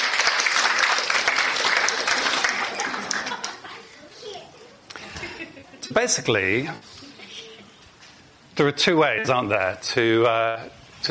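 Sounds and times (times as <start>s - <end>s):
audience applause for a volunteer who blew up a balloon: 0.0s - 3.7s
laughter: 1.7s - 5.9s
speech: 5.9s - 6.9s, 8.6s - 11.0s.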